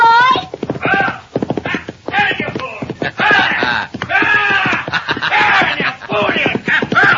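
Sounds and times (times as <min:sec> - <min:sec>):
horse hoofbeats: 0:00.0 - 0:07.1
people shouting: 0:00.0 - 0:07.1
laughter: 0:02.8 - 0:07.1.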